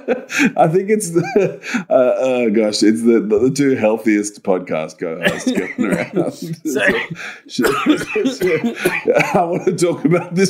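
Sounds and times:
laughter: 0.0s - 1.8s, 5.3s - 10.4s
speech: 0.0s - 10.4s
person coughing harshly: 5.2s - 10.4s.

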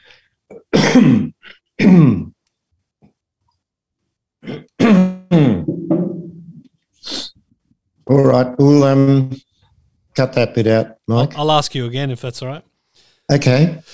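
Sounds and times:
small cough: 0.5s - 2.3s, 4.4s - 5.7s
man clearing his throat: 0.5s - 2.4s, 4.4s - 5.7s
speech: 1.0s - 2.3s, 8.1s - 9.5s, 10.2s - 12.7s, 13.3s - 13.9s.

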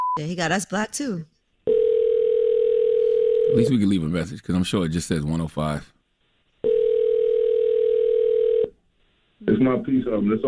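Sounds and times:
speech: 0.2s - 1.3s, 3.5s - 6.0s, 9.4s - 10.4s
phone ringback tone on an outgoing call: 1.7s - 3.8s, 6.6s - 8.7s.

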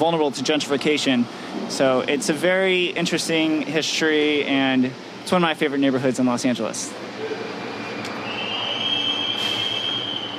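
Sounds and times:
speech: 0.0s - 7.4s
subway train rumbling along the rails: 7.0s - 10.3s
brief hissing bursts: 9.1s - 10.3s.

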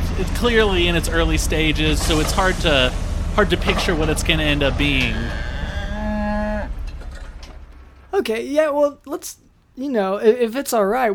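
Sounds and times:
speech: 0.2s - 5.5s, 8.2s - 11.1s
cow mooing: 4.8s - 7.0s.

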